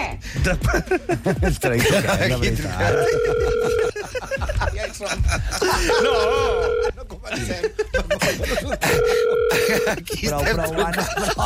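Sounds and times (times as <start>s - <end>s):
laughter: 0.4s - 11.4s
speech: 0.4s - 11.4s
two-pitch telephone dial tone: 6.4s - 6.9s, 9.0s - 9.7s.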